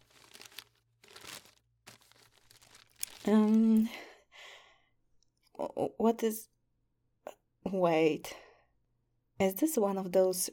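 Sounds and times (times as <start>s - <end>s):
gift wrapping paper being torn and crumpled: 0.0s - 3.6s
speech: 3.2s - 4.0s, 5.8s - 6.5s, 7.7s - 8.4s, 9.4s - 10.5s.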